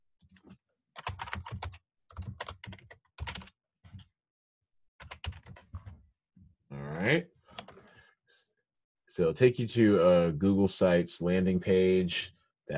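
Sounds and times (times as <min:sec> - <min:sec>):
typing on a computer keyboard: 0:00.3 - 0:04.1, 0:05.0 - 0:06.0, 0:07.5 - 0:07.9
speech: 0:07.0 - 0:07.3, 0:09.2 - 0:12.7.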